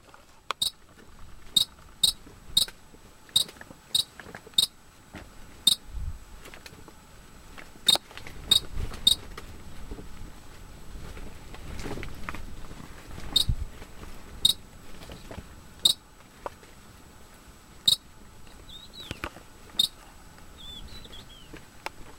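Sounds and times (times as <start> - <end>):
Pleske's ground jay calling: 0.6 - 0.8, 1.5 - 4.8, 5.6 - 5.9, 7.8 - 9.3, 13.3 - 13.6, 14.4 - 14.6, 15.8 - 16.0, 17.8 - 19.2, 19.8 - 21.5.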